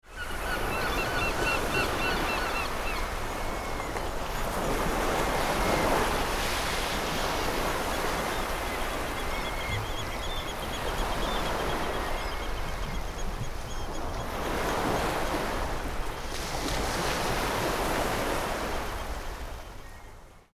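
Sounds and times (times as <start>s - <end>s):
sea waves: 0.0s - 19.8s
seagull calling: 0.1s - 6.0s, 7.7s - 15.2s.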